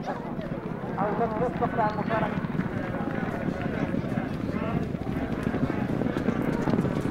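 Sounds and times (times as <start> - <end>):
voices murmuring at a horse race in Libya: 0.0 - 7.0
racehorses galloping on turf at a horse race in Libya: 0.1 - 7.0.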